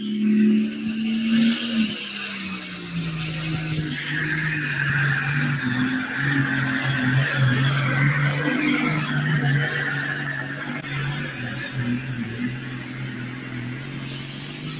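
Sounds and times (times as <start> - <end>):
turbocharged pulling tractor engine roaring: 0.0 - 14.7.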